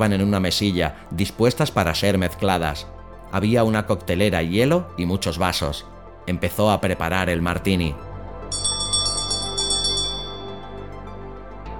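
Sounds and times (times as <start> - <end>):
speech: 0.0 - 8.6
small hand bell ringing: 8.5 - 10.8.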